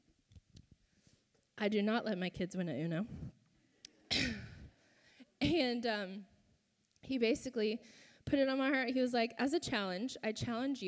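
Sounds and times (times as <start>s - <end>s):
speech: 1.6s - 3.2s, 5.6s - 6.3s, 7.0s - 10.8s
harsh raspy throat clearing during a cough attack: 4.1s - 4.7s.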